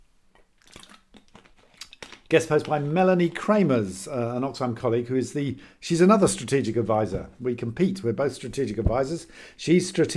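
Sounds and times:
soft gulping clicks and wet mouth sounds: 0.3 - 2.9
slurping water: 0.4 - 3.0
speech: 2.3 - 10.1.

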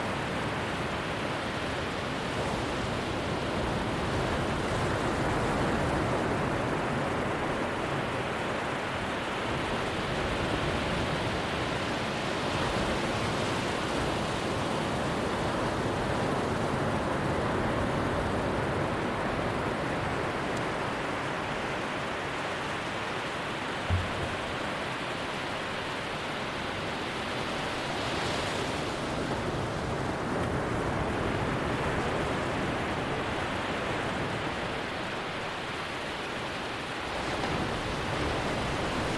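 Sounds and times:
surf rolling in along a beach: 0.0 - 39.1
small thump: 23.9 - 24.7.

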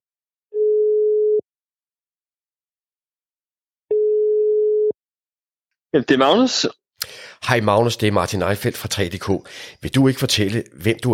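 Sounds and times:
electronic telephone ringback tones while placing a call: 0.6 - 1.4, 3.9 - 5.0
speech: 5.9 - 11.1.

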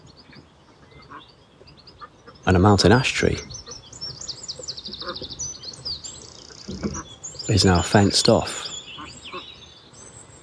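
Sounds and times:
steady outdoor hiss: 0.0 - 10.4
chickens clucking in a fenced area: 1.9 - 9.5
ducks quacking in a fenced area with a duck pond: 2.0 - 5.5, 6.4 - 9.6
speech: 2.5 - 3.5, 7.6 - 8.7.

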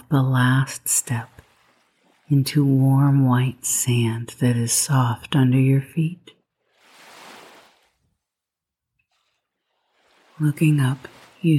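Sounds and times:
gentle ocean waves over sand dunes: 0.0 - 4.1, 6.4 - 8.3, 9.0 - 11.5
speech: 0.1 - 1.4, 2.3 - 6.3, 10.4 - 11.5.

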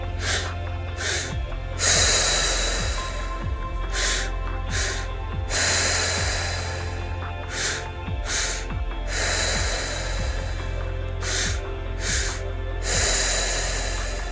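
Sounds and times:
long hissing exhale in guided breathwork: 0.0 - 14.3
soft sustained musical drone: 0.0 - 14.3
two short sharp inhales through the nose in guided breathwork: 0.1 - 14.3.

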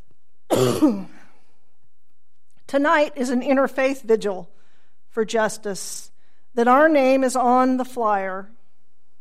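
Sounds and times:
person clearing throat: 0.5 - 1.2
person coughing: 0.5 - 1.3
speech: 0.6 - 1.2, 2.7 - 4.5, 5.1 - 8.6.

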